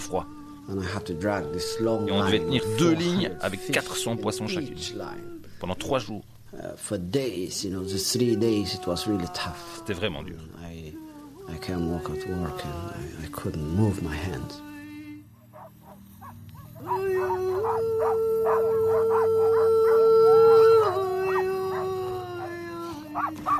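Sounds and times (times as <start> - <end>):
sled dogs howling together: 0.0 - 5.2, 8.1 - 10.2, 15.5 - 23.5
speech: 0.1 - 14.7.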